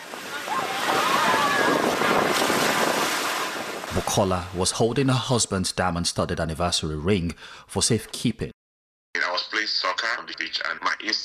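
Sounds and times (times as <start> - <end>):
ocean surf washing onto the beach at Virginia Beach oceanfront: 0.0 - 4.6
speech: 4.0 - 8.5, 10.3 - 11.2.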